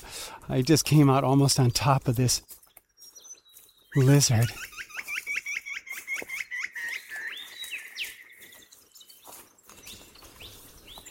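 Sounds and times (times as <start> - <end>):
speech: 0.0 - 2.6, 3.9 - 4.7
rapid repeated rising bird chirps: 2.6 - 11.0.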